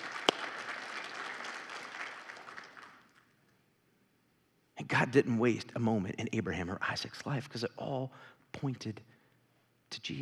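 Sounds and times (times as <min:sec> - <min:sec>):
audience applauding: 0:00.0 - 0:03.2
sharp clap: 0:00.0 - 0:03.2
speech: 0:04.8 - 0:09.1, 0:09.9 - 0:10.2.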